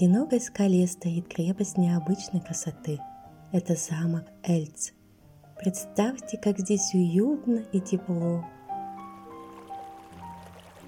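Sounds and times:
speech: 0.0s - 5.0s, 5.6s - 8.6s
small stream babbling around a castle in a secluded valley: 9.1s - 10.8s.

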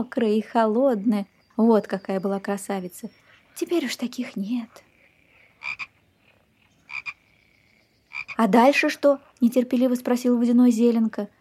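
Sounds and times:
speech: 0.0s - 4.9s, 5.6s - 5.9s, 8.4s - 11.3s
frog croaking in loud double bursts: 2.9s - 9.6s.

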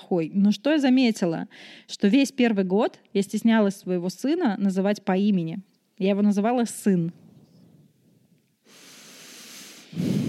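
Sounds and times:
speech: 0.1s - 7.2s
heavy breathing: 8.6s - 10.2s.

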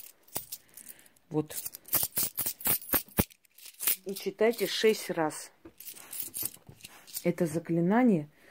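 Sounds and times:
loose small change coins clinking and jingling: 0.0s - 5.0s, 5.8s - 7.3s
speech: 1.3s - 1.8s, 4.0s - 5.6s, 7.2s - 8.4s.

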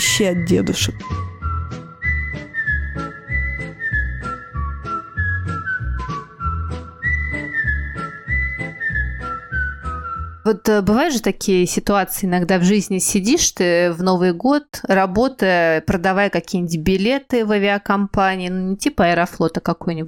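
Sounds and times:
person whistling a melody: 0.0s - 10.5s
speech: 0.2s - 1.3s, 10.5s - 20.0s.

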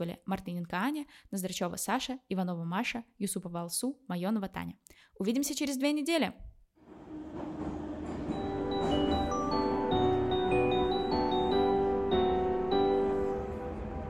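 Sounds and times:
speech: 0.0s - 6.5s
metro train electric motors whining at a station: 6.8s - 14.0s.

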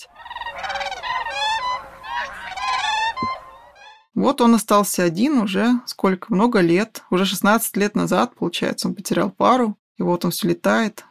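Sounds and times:
Siberian crane trumpeting calls: 0.0s - 4.1s
speech: 4.2s - 11.0s.

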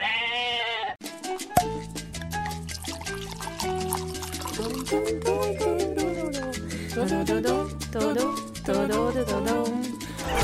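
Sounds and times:
goat bleating: 0.0s - 1.0s
upbeat music track with steady bass notes and bright percussion: 1.0s - 10.3s.

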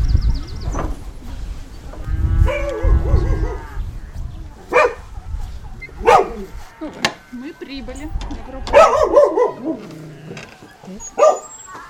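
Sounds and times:
farm animal calls in a rural outdoor background: 1.5s - 11.8s
dog barking in the distance: 2.4s - 3.8s, 4.6s - 6.8s, 8.6s - 11.8s
speech: 7.6s - 9.8s.

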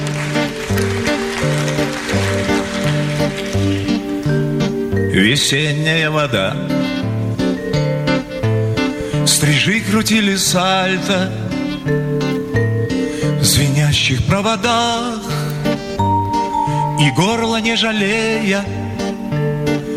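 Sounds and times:
musical accompaniment: 0.0s - 19.9s
male voice singing Russian chanson song from a recording: 5.1s - 7.0s, 9.2s - 11.8s, 13.2s - 15.8s, 16.9s - 19.9s
speech: 5.2s - 6.7s, 9.4s - 12.0s, 13.5s - 15.4s, 17.0s - 18.8s.

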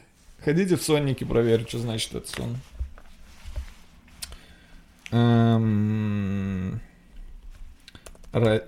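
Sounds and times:
speech: 0.5s - 2.7s, 5.1s - 6.9s, 8.3s - 8.6s
computer keyboard typing: 7.9s - 8.6s.

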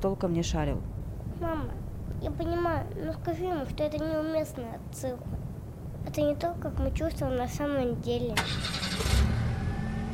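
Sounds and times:
speech: 0.0s - 5.4s, 6.0s - 9.2s
car engine starting and revving: 8.4s - 10.1s.

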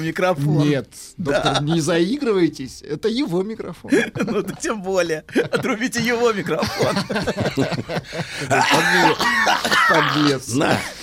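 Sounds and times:
speech: 0.0s - 11.0s
laughter: 1.2s - 2.0s, 3.8s - 10.9s
loud harsh drawn-out cough: 8.4s - 11.0s.

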